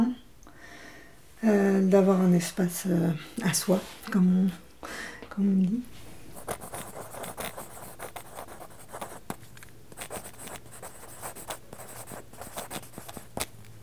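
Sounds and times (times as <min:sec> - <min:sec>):
speech: 0:01.4 - 0:06.6
pencil drawing on paper: 0:06.4 - 0:13.5.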